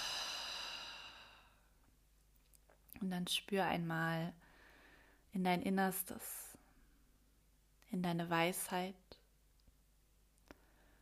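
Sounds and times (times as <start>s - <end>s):
long deep breath out through the mouth during a guided healing meditation: 0.0s - 1.7s
speech: 3.0s - 4.4s, 5.3s - 6.6s, 7.9s - 9.1s.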